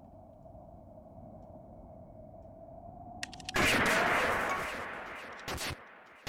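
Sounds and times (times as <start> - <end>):
sharp clicks: 3.2 - 6.2
gunshot in a video game: 3.6 - 6.2.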